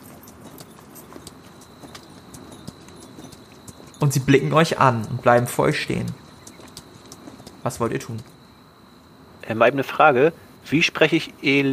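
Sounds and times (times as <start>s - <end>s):
rustling background: 0.0s - 8.5s
horses' hooves plodding slowly: 0.0s - 8.6s
speech: 4.0s - 6.2s, 7.6s - 8.3s, 9.5s - 11.7s.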